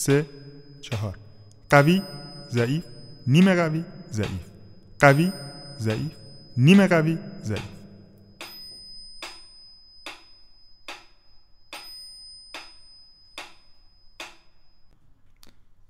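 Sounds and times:
speech: 0.0 - 7.8
metronome ticking: 0.0 - 10.3
faint high bell-like ringing: 0.0 - 15.0.

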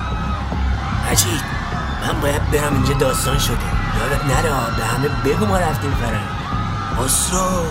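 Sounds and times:
crowd of airplane passengers screaming and shouting as the plane shakes: 0.0 - 7.6
speech: 1.1 - 6.4, 7.0 - 7.6.

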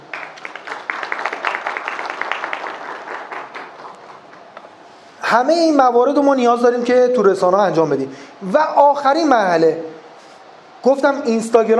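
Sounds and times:
crowd applauding: 0.0 - 4.8
speech: 5.3 - 9.9, 10.8 - 11.7.

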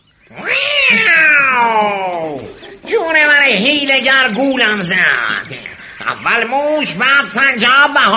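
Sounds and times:
angry cat yowling: 0.3 - 2.5
laughter: 0.9 - 4.4
speech: 3.1 - 8.1.

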